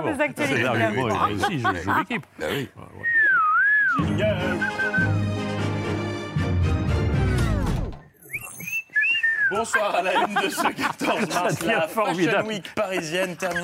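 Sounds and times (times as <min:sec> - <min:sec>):
speech: 0:00.0 - 0:03.1, 0:03.9 - 0:05.1, 0:09.5 - 0:13.6
laughter: 0:00.4 - 0:02.7, 0:09.5 - 0:13.6
person whistling a short wavering tune: 0:03.0 - 0:05.2, 0:08.2 - 0:09.6
loud music: 0:04.0 - 0:07.9.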